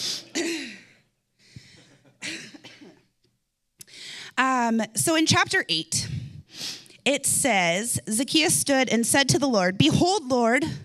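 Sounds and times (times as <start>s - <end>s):
person coughing harsh chesty coughs: 0.2s - 1.0s, 1.8s - 3.1s
speech: 4.7s - 6.1s, 7.1s - 10.8s.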